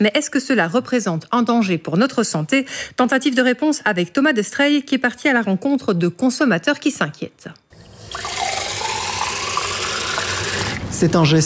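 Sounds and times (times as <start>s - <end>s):
speech: 0.0s - 8.5s, 11.0s - 11.4s
tap water running from kitchen faucet: 7.7s - 10.8s.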